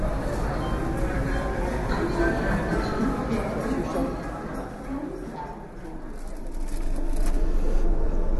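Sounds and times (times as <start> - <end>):
crowd chatter at a busy Indian train station: 0.0 - 8.3
mechanical rumble at a busy Indian train station: 6.2 - 8.3.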